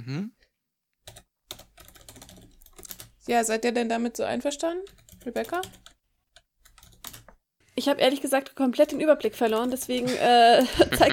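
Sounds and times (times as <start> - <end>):
speech: 0.0 - 0.4, 3.3 - 5.8, 7.8 - 11.1
fingers typing on a computer keyboard to take notes: 1.0 - 3.1, 4.8 - 7.4, 9.2 - 10.0
laughter: 10.0 - 11.1.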